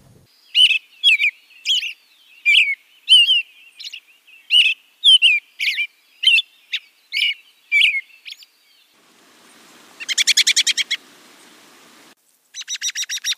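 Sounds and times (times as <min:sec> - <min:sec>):
American robin song: 0:00.3 - 0:12.2
harsh rapid buzzy chatter of American robin: 0:09.0 - 0:12.1.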